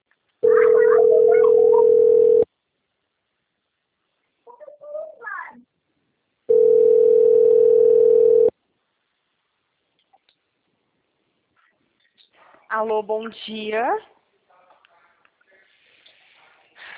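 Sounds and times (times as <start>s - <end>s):
steady buzzy modem tone on a phone line: 0.4s - 2.5s, 6.5s - 8.5s
speech: 12.8s - 14.1s.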